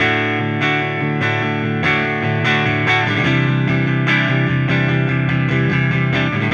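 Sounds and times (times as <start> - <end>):
clean guitar strumming indie rock: 0.0 - 6.5.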